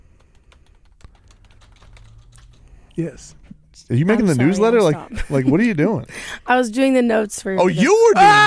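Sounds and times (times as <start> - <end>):
typing on a computer keyboard with long nails: 0.0 - 2.7
low hum: 0.0 - 8.4
speech: 3.0 - 8.4.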